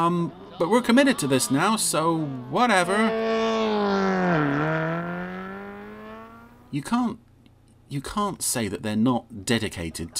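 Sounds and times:
speech: 0.0 - 3.5, 6.7 - 7.3, 7.9 - 10.1
car engine switched on by remote control humming: 0.0 - 7.0.

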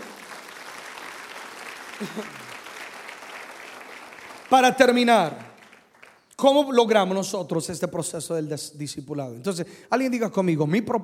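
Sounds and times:
audience applauding loudly: 0.0 - 6.3
speech: 2.0 - 2.5, 4.5 - 5.5, 6.4 - 11.0.

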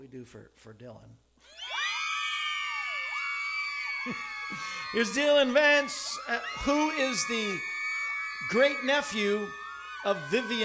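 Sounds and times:
speech: 0.1 - 1.7, 4.0 - 7.8, 8.4 - 10.6
loud crowd of girls screaming in unison: 1.4 - 10.6.

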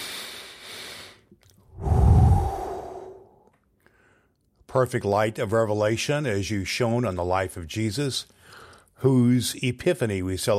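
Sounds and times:
deep breath taken before a prayer: 0.0 - 4.4, 8.4 - 8.9
speech: 4.7 - 10.5.

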